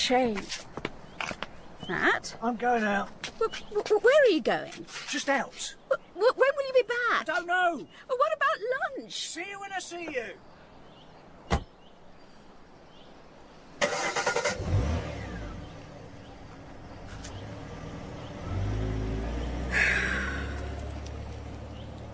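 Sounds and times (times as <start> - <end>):
speech: 0.1 - 0.8, 1.9 - 10.5
thud: 11.5 - 11.7
car engine starting and revving as the vehicle pulls off: 13.8 - 22.1.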